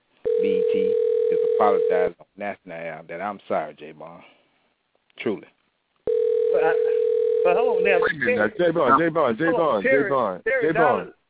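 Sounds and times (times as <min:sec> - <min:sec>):
telephone dial tone: 0:00.3 - 0:01.9, 0:06.1 - 0:07.9
speech: 0:01.6 - 0:04.4, 0:05.2 - 0:05.6, 0:06.5 - 0:11.2.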